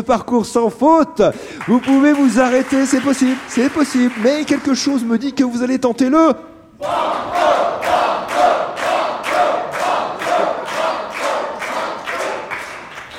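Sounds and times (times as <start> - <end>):
speech: 0.0 - 7.6
studio audience at a quiz game shouting in unison: 6.8 - 12.5.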